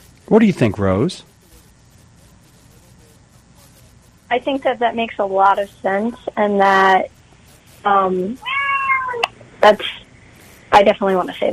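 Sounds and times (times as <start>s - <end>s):
speech: 0.3s - 1.3s, 4.3s - 7.2s, 7.8s - 8.5s, 9.6s - 10.0s, 10.8s - 11.5s
cat meowing: 8.4s - 9.3s.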